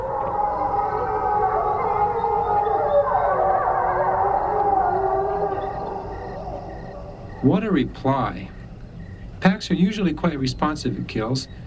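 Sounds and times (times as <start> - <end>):
wolf pack howling in chorus in reply: 0.0 - 8.0
speech: 7.4 - 8.5, 9.4 - 11.6.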